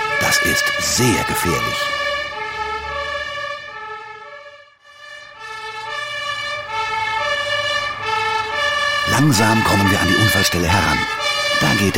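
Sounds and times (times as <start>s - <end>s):
fire engine siren wailing on the A1 autobahn: 0.0s - 11.9s
speech: 0.3s - 2.0s, 9.2s - 11.9s.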